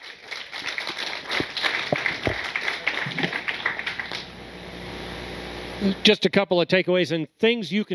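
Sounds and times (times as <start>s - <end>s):
room full of people clapping: 0.0s - 4.7s
speech: 5.8s - 7.9s.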